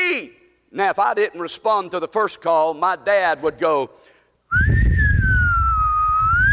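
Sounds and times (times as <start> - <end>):
speech: 0.2 - 4.8
loud shrill human whistle calling children home to eat: 4.5 - 6.5.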